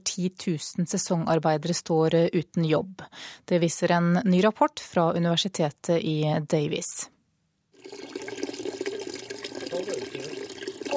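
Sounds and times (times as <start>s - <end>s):
speech: 0.1s - 7.2s
water trickling from a garden hose onto the ground: 7.8s - 10.9s.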